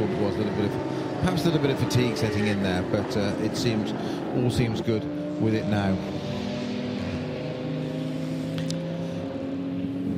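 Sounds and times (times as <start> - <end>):
onboard engine of a red 992-category race car: 0.0 - 10.1
speech: 0.3 - 6.2.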